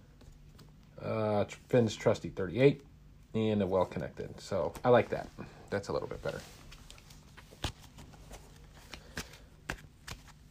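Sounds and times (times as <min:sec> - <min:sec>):
speech: 0:01.5 - 0:06.6
deck of cards being shuffled for a card game: 0:06.1 - 0:10.5.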